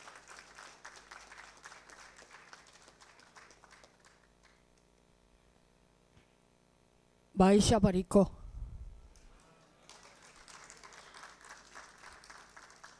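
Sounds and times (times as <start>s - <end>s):
applause from a sizable audience: 0.0s - 4.6s, 9.8s - 12.9s
low hum: 6.4s - 9.3s
speech: 7.4s - 8.4s.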